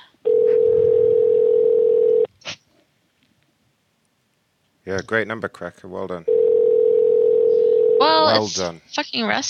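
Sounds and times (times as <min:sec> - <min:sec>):
telephone ringing tone: 0:00.2 - 0:02.3, 0:06.3 - 0:08.4
speech: 0:04.9 - 0:06.4, 0:08.0 - 0:09.4.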